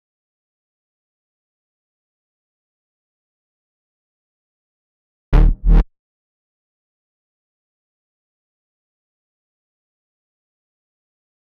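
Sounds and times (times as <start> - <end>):
complex electro synths: 5.4 - 5.8
bass in B sharp minor: 5.4 - 5.9.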